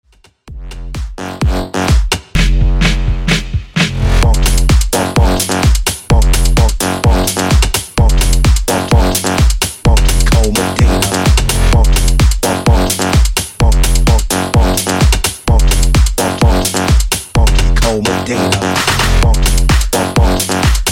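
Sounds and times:
funk bass house remix music: 0:00.5 - 0:20.9.

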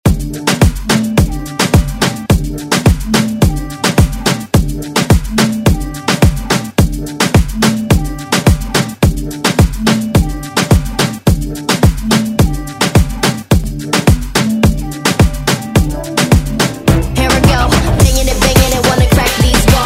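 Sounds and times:
moombahton track: 0:00.0 - 0:19.8.

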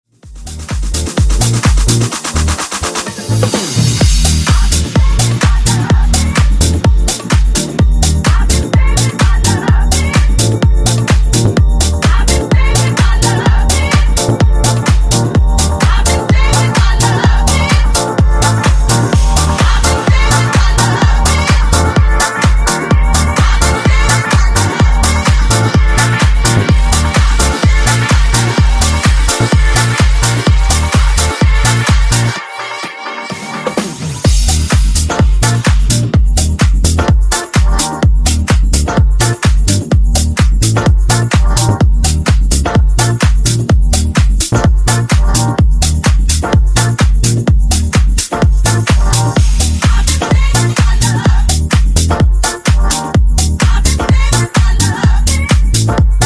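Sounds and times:
disco funk remix at 127 BPM: 0:00.2 - 0:56.2.

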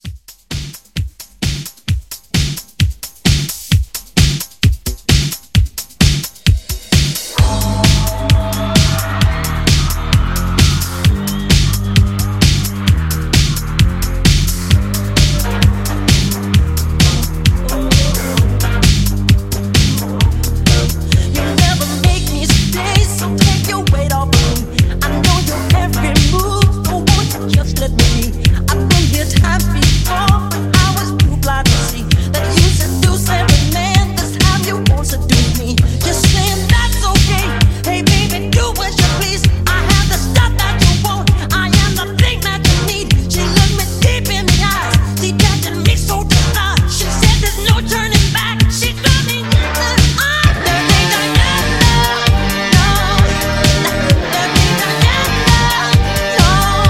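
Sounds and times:
80s pop drum beat: 0:00.0 - 0:56.8.

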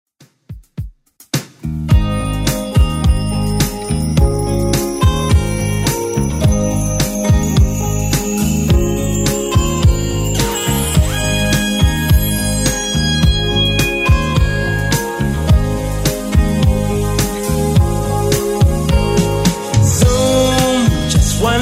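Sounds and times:
80s Redrum drum beat: 0:00.2 - 0:21.6.

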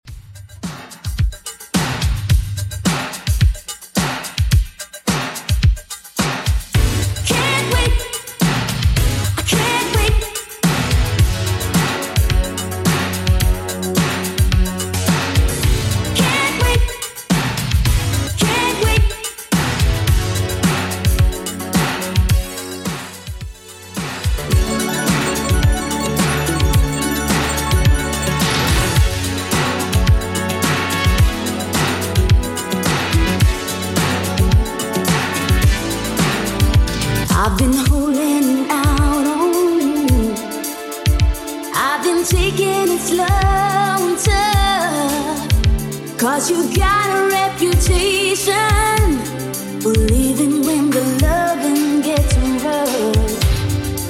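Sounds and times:
80s Redrum drum machine beat at 108 bpm: 0:00.0 - 0:40.5, 0:41.1 - 0:41.6, 0:42.3 - 0:46.0, 0:46.6 - 0:54.0.

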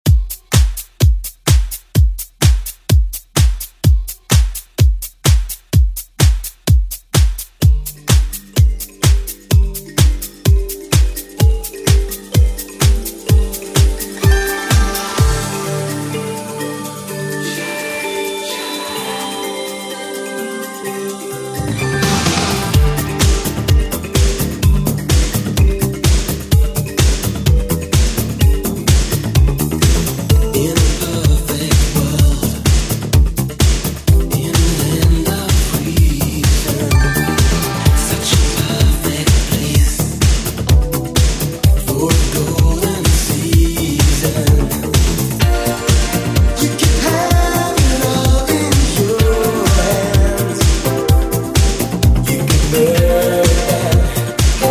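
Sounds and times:
80s style drums: 0:00.0 - 0:17.4, 0:21.5 - 0:54.7.

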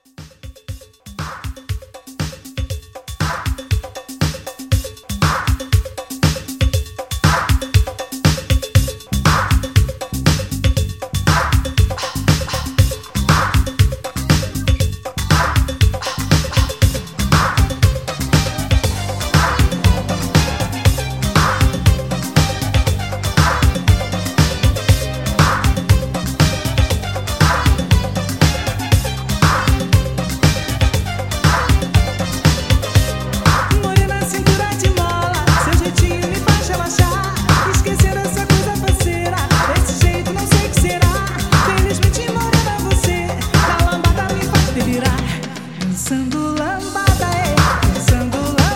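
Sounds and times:
80s conga drum: 0:00.0 - 0:48.7.

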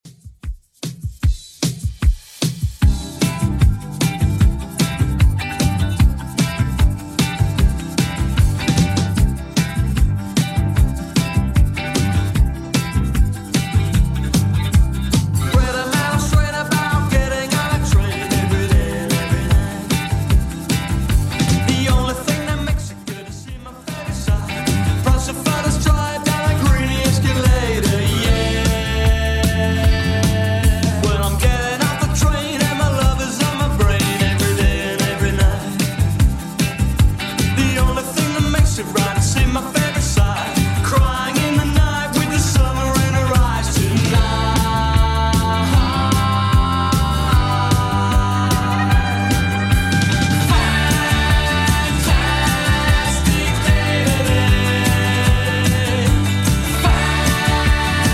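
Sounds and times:
eighties style music track: 0:00.1 - 0:58.1.

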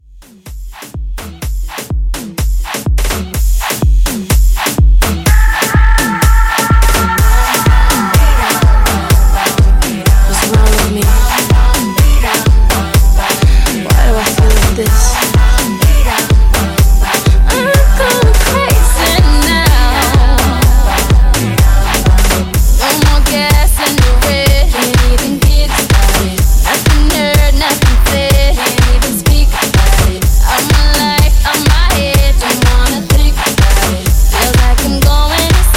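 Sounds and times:
clean Afro pop re-drum beat: 0:00.1 - 0:35.7.

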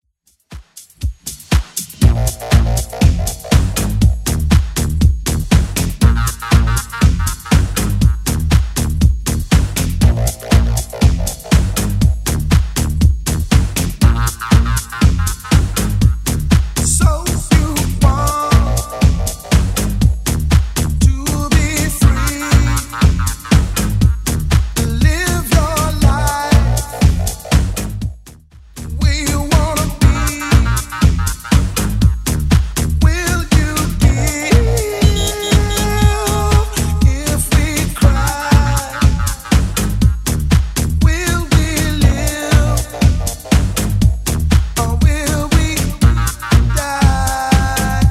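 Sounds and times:
90s drum beat: 0:00.3 - 0:48.0.

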